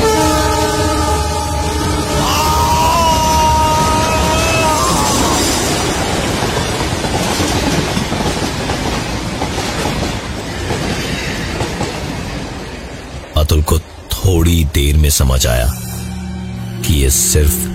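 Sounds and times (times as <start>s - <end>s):
train horn blast: 0.0s - 2.2s
train cars rumbling and rattling while passing: 0.0s - 17.7s
speech: 15.2s - 15.9s, 16.8s - 17.7s.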